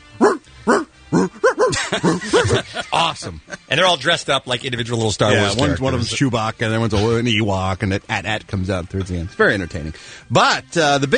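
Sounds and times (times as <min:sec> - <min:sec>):
chorus of dogs barking a march theme: 0:00.2 - 0:01.9
speech: 0:01.2 - 0:11.1
laughter: 0:01.6 - 0:03.8, 0:05.4 - 0:06.3.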